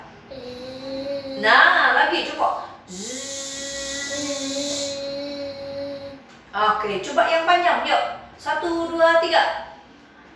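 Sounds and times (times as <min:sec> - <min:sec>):
speech: 0:01.4 - 0:03.3, 0:06.6 - 0:09.6
man humming a steady buzz imitating a bee: 0:02.9 - 0:06.2.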